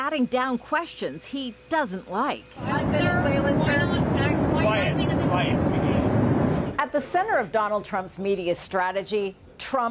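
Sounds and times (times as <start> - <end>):
speech: 0.1 - 3.9, 7.0 - 9.8
aircraft engine roar: 2.6 - 6.8.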